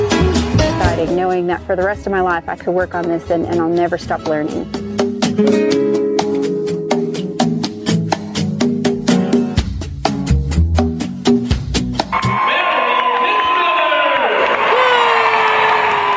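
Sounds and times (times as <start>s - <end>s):
rhythmic upbeat music: 0.0s - 12.5s
speech: 1.0s - 4.8s, 5.4s - 5.8s
crowd cheering with whoops and shouts: 12.1s - 16.1s.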